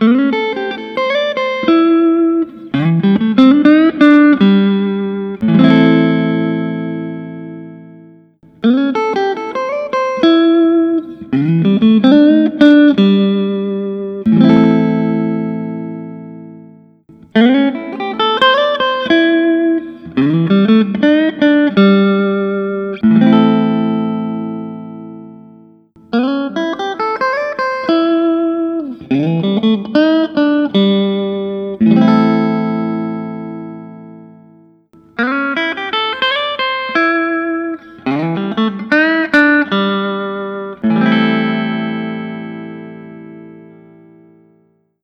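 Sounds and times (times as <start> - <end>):
Fender Custom Shop Wildwood 10 61 electric guitar: 0.0 - 44.8.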